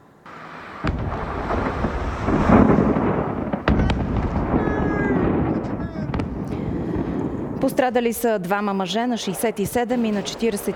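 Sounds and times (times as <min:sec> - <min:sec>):
massive fireworks factory explosion roar and rumble: 0:00.3 - 0:08.0
sharp cracking explosion bangs: 0:00.3 - 0:08.0
speech: 0:07.6 - 0:10.7.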